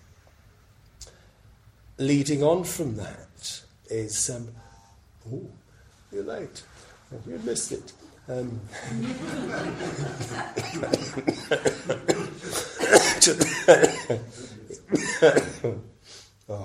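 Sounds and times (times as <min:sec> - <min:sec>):
speech: 0:02.0 - 0:03.3, 0:03.9 - 0:15.9, 0:16.5 - 0:16.6
laughter: 0:08.7 - 0:15.9
sharp coughing: 0:10.4 - 0:15.8.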